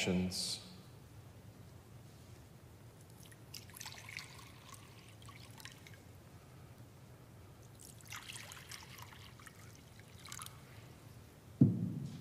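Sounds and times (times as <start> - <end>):
low hum: 0.0 - 12.1
water poured into a baptismal font: 3.2 - 6.0, 7.7 - 10.6
dull knock: 11.6 - 12.1.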